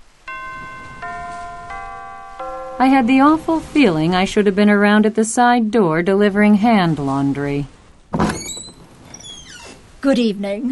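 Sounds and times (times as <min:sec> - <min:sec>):
faint hiss: 0:00.0 - 0:10.7
front doorbell at a house ringing with chime notes: 0:00.3 - 0:04.2
speech: 0:02.8 - 0:07.8, 0:10.0 - 0:10.7.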